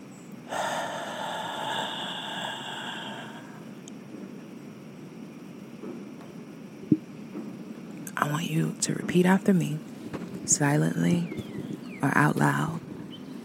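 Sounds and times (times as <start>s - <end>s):
deep exhale during a guided morning meditation: 0.5s - 3.8s
speech: 8.2s - 9.9s, 10.5s - 12.8s.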